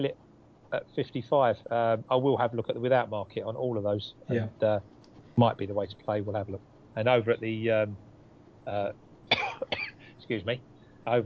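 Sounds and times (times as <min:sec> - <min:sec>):
speech: 0:00.8 - 0:04.8, 0:05.4 - 0:08.0, 0:08.7 - 0:08.9, 0:10.2 - 0:11.2
person coughing: 0:04.3 - 0:04.6, 0:09.3 - 0:10.2.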